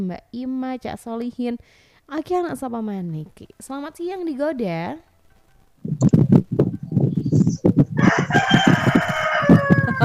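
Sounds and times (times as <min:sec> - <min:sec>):
speech: 0:00.0 - 0:05.1, 0:05.8 - 0:06.2
rooster clucking: 0:07.3 - 0:10.0
rooster crowing: 0:08.0 - 0:10.0.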